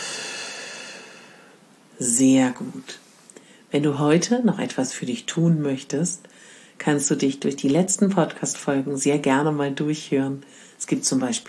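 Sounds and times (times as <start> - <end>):
long steady exhale through the mouth: 0.0 - 1.6
speech: 2.0 - 3.0, 3.7 - 11.4.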